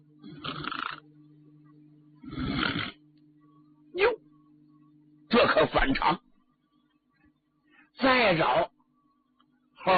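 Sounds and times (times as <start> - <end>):
low steady hum: 0.0 - 9.9
voice imitating snoring: 0.2 - 1.0, 2.2 - 3.0
speech: 5.5 - 6.3, 8.3 - 8.7.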